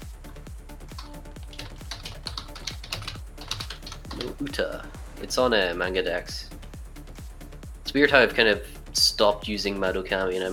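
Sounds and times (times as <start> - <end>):
rapid typing on a computer keyboard: 1.0 - 4.4
speech: 4.2 - 6.6, 7.9 - 10.5.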